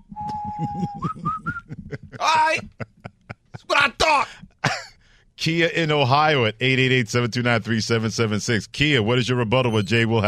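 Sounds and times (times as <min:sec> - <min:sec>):
whistling: 0:00.0 - 0:01.8
laughter: 0:00.2 - 0:04.2
speech: 0:00.6 - 0:01.3, 0:05.4 - 0:10.2.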